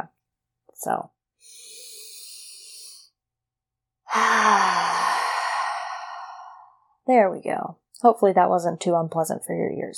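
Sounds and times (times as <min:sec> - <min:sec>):
speech: 0:00.8 - 0:01.7, 0:04.1 - 0:05.0, 0:07.1 - 0:09.9
deep breath taken to recenter: 0:01.4 - 0:03.2, 0:04.1 - 0:06.8.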